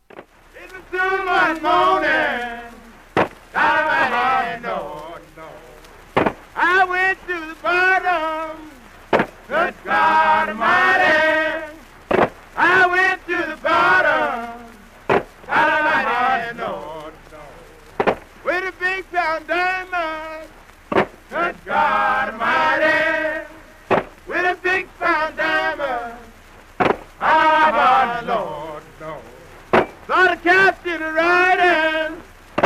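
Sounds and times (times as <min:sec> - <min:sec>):
hiss of a 1933 recording: 0:00.0 - 0:32.6
prisoners singing a slow work song: 0:00.5 - 0:32.6.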